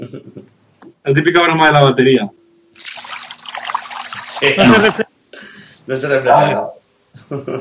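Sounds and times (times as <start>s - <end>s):
faint low hum: 0.0s - 7.6s
speech: 0.1s - 0.4s, 1.0s - 3.0s, 4.4s - 5.1s, 5.9s - 7.6s
pool water trickling and splashing: 2.8s - 5.0s
laughter: 4.3s - 5.1s, 7.2s - 7.6s.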